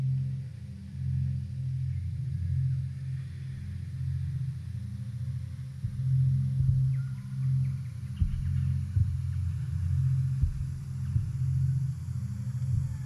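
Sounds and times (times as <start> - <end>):
deep continuous low hum: 0.1 - 13.0
slow muffled heartbeat: 5.8 - 13.0.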